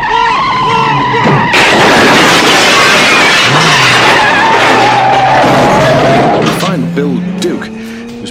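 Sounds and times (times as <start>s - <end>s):
car engine roaring: 0.0s - 8.2s
tires squealing: 0.0s - 8.2s
crash of shattering glass and debris through showroom window: 1.4s - 6.6s.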